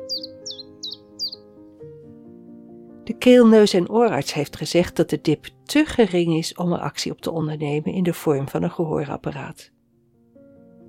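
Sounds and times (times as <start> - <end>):
chiffchaff chirping: 0.0 - 1.4
speech: 3.1 - 9.8.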